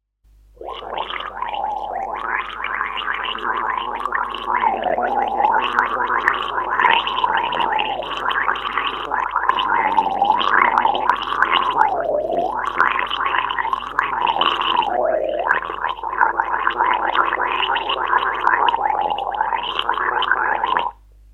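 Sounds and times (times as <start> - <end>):
person gargling: 0.6 - 21.0.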